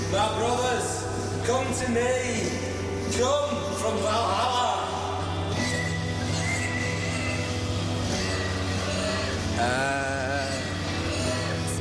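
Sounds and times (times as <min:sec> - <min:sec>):
speech: 0:00.1 - 0:04.7, 0:09.6 - 0:10.3
several pigs squealing: 0:05.5 - 0:11.7.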